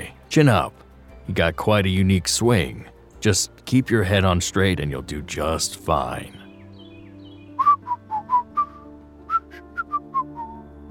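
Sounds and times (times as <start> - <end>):
speech: 0.4 - 6.4
person whistling a cheerful melody: 7.6 - 10.7.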